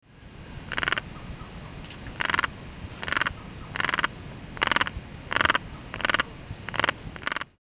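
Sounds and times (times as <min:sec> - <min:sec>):
Dyscophus insularis frog calling: 0:00.4 - 0:07.6.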